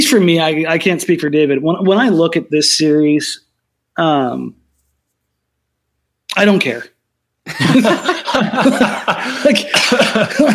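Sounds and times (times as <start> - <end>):
speech: 0.0 - 3.4, 4.0 - 4.6, 6.3 - 6.9, 7.5 - 10.5
person chuckling: 7.5 - 10.5
person coughing: 9.4 - 10.5.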